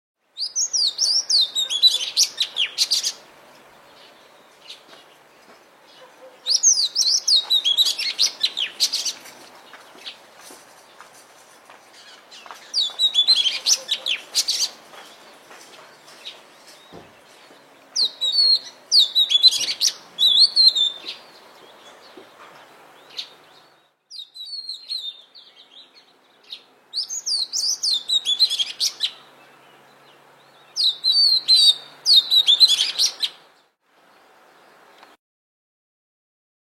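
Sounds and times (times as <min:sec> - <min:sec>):
Seychelles magpie robin singing: 0:00.4 - 0:03.2, 0:06.0 - 0:09.2, 0:12.0 - 0:14.8, 0:18.0 - 0:22.2, 0:23.0 - 0:33.4.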